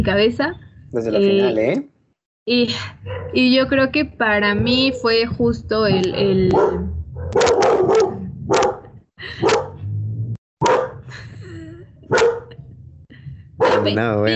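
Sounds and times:
speech: 0.0s - 7.5s, 13.8s - 14.3s
dog barking angrily: 3.0s - 3.4s, 6.5s - 9.8s, 10.6s - 11.1s, 12.1s - 12.5s, 13.6s - 14.1s.

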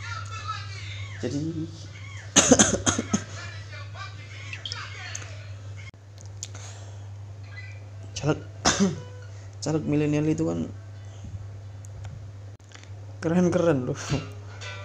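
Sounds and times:
speech: 1.2s - 3.2s, 8.2s - 10.8s, 13.2s - 14.4s
person coughing: 2.4s - 3.3s, 8.7s - 9.1s.

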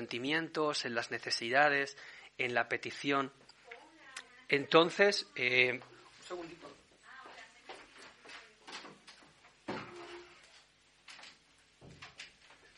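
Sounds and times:
speech: 0.0s - 3.5s, 4.5s - 6.8s
door pushed shut with a solid thump: 9.7s - 10.3s.

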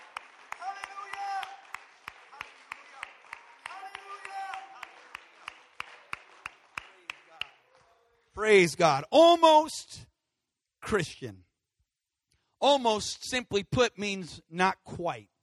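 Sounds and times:
audience clapping in a steady rhythm: 0.0s - 8.6s
speech: 8.4s - 10.1s, 10.9s - 11.4s, 12.6s - 15.3s.

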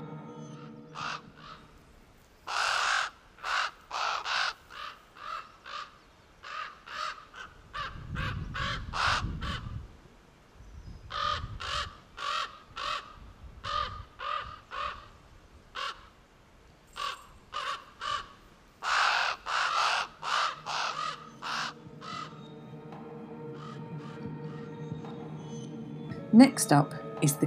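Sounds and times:
raven croaking caws: 0.6s - 1.8s, 2.5s - 9.7s, 11.1s - 16.1s, 17.0s - 25.1s
speech: 26.4s - 27.4s.

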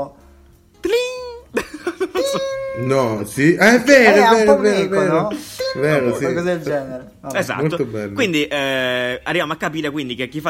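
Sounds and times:
speech: 0.0s - 0.2s, 2.3s - 10.4s
person vocally imitating the WhatsApp message notification tone: 0.8s - 1.5s, 2.2s - 3.3s, 5.3s - 6.5s.

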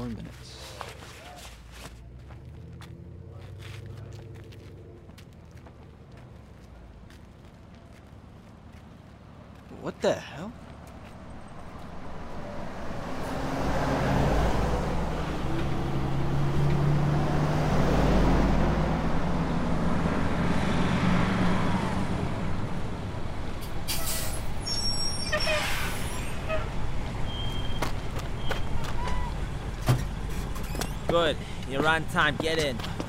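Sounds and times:
heavy convoy truck engines rumbling: 0.0s - 33.0s
speech: 9.8s - 10.6s, 31.2s - 33.0s
heavy truck air brakes hissing: 23.8s - 26.5s
high squeals: 23.9s - 29.5s.

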